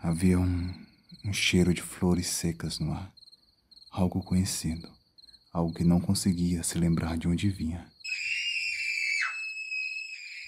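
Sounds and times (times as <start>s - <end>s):
speech: 0.1s - 3.2s, 3.9s - 7.9s
child screaming in terror: 8.0s - 10.4s.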